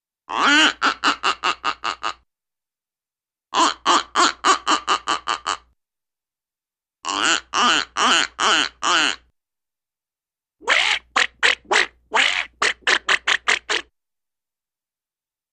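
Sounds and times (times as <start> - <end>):
duck quacking: 0.3 - 2.2, 3.6 - 5.6, 7.1 - 9.2, 10.6 - 13.9.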